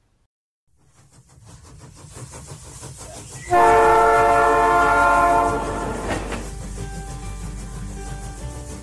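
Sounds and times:
train rumbling along the rails: 0.7 - 8.8
loud sustained train horn blast: 3.5 - 6.4.

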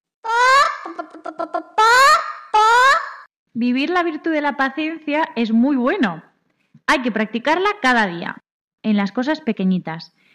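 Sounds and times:
hen squawking and clucking in a henhouse: 0.2 - 3.3
speech: 1.0 - 2.0, 3.6 - 6.3, 6.9 - 10.2.

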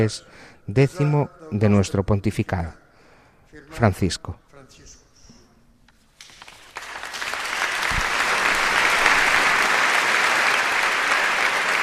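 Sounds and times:
speech: 0.0 - 2.8, 3.5 - 5.0
large audience applauding in a cathedral for a new bishop's appointment: 6.2 - 11.8.

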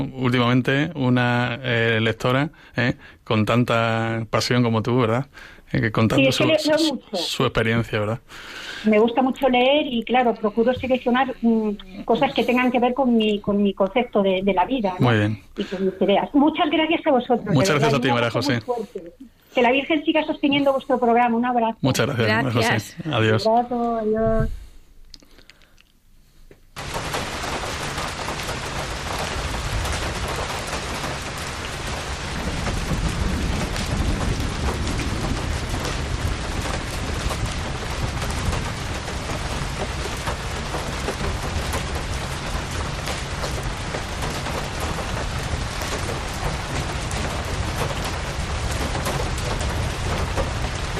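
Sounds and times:
steady dense rainfall: 0.0 - 20.8, 26.8 - 50.9
speech: 0.0 - 24.6
distant thunder rumble: 26.8 - 50.9.

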